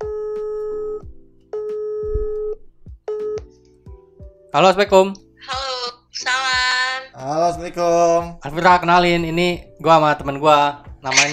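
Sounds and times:
telephone ringing tone: 0.0s - 1.0s, 1.6s - 3.5s
faint low thumps: 0.0s - 1.3s, 2.0s - 3.5s
speech: 4.5s - 5.6s, 7.2s - 11.3s.

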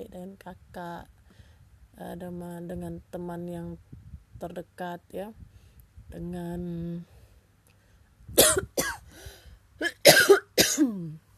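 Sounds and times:
speech: 0.0s - 1.2s, 2.0s - 5.5s, 6.1s - 7.2s, 10.8s - 11.2s
person coughing: 8.4s - 9.1s, 9.8s - 11.1s.

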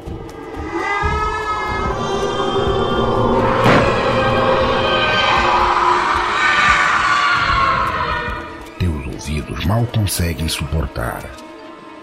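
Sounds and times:
horrible monster scream: 0.6s - 8.6s
speech: 9.8s - 11.5s.

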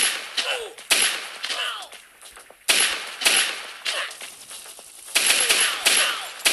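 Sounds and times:
sharp bright video game gunshot blasts: 0.0s - 2.0s, 2.6s - 4.2s, 5.1s - 6.5s.

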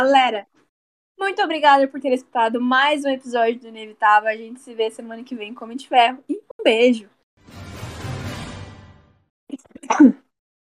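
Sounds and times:
speech: 0.0s - 0.5s, 1.2s - 7.6s, 9.5s - 10.2s
person coughing: 9.8s - 10.2s.

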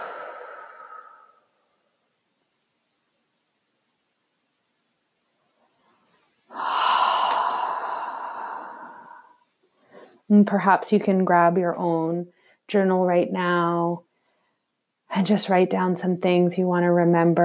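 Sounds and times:
people breathing slowly together: 0.0s - 1.6s, 6.5s - 10.3s
speech: 10.3s - 14.1s, 15.1s - 17.4s.

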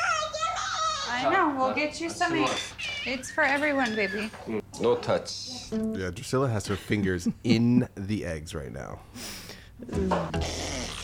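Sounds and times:
speech: 1.1s - 10.8s
young girl blowing a wet raspberry pretending to fart: 9.9s - 11.0s.

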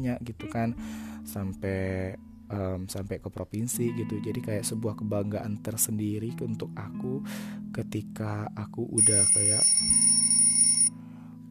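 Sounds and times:
speech: 0.0s - 10.1s
electronic alarm ringing with a high-pitched tone: 9.0s - 10.9s.

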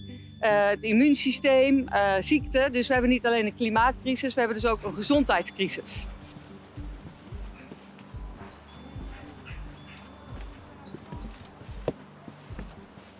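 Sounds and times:
speech: 0.4s - 6.2s
footsteps crunching through a garden: 4.6s - 13.1s.

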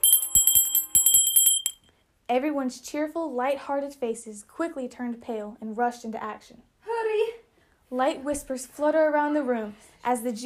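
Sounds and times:
bell ringing with rapid strikes: 0.0s - 1.8s
speech: 2.3s - 7.3s, 7.9s - 10.4s.

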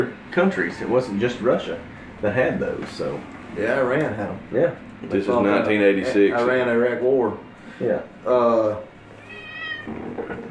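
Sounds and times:
speech: 0.0s - 8.9s
cat meowing: 9.2s - 10.4s.

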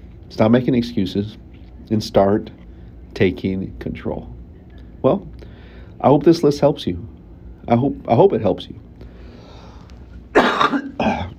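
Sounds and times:
speech: 0.3s - 4.4s, 5.0s - 5.4s, 6.0s - 7.1s, 7.7s - 8.8s
harsh coughs: 10.3s - 11.3s.

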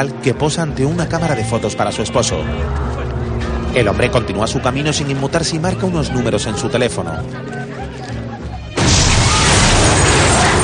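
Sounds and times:
speech: 0.0s - 7.6s
laughter: 5.8s - 8.8s
car bomb exploding in a market: 8.8s - 10.6s.

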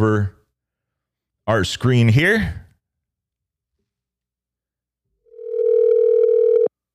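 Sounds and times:
speech: 0.0s - 0.4s, 1.5s - 2.6s
phone ringback tone: 5.3s - 6.7s.

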